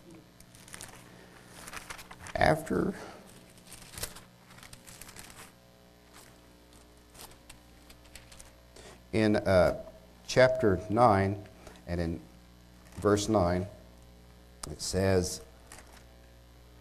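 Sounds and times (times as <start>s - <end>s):
book pages being turned to look for a chapter: 0.4s - 8.6s, 15.6s - 16.1s
speech: 2.4s - 3.2s, 9.2s - 12.3s, 13.0s - 13.8s, 14.7s - 15.5s.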